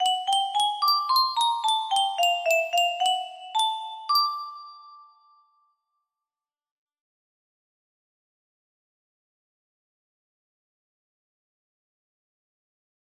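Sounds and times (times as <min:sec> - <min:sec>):
music box: 0:00.0 - 0:05.7.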